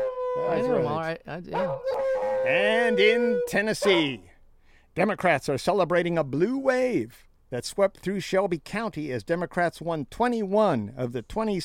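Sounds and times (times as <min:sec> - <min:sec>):
long wavering canine howls: 0:00.0 - 0:04.2
speech: 0:00.4 - 0:04.3, 0:05.0 - 0:11.6.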